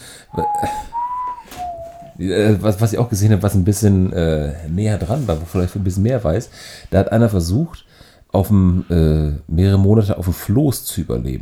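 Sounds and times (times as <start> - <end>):
noise: 0.0 - 11.4
speech: 0.3 - 0.9, 2.2 - 11.4
person whistling a tune: 0.3 - 2.2.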